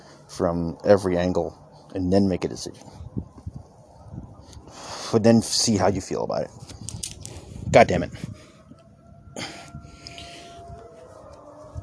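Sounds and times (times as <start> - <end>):
siren wailing outside: 0.0 - 11.8
speech: 0.4 - 3.3, 5.1 - 6.7, 7.7 - 8.3
breathy burst: 9.4 - 10.6.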